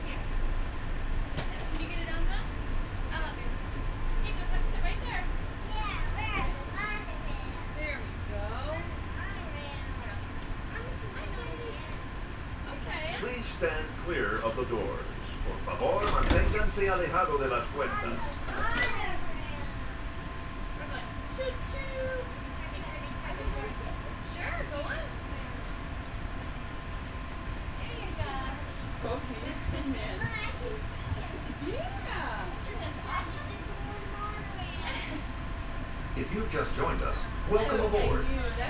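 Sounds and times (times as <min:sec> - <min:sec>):
monorail train electric hum and whine pulling away: 0:00.0 - 0:38.6
voices and cabin chatter: 0:06.2 - 0:25.9, 0:27.3 - 0:38.6
speech: 0:13.6 - 0:18.4
monorail doors sliding shut with a solid thump: 0:14.2 - 0:19.8.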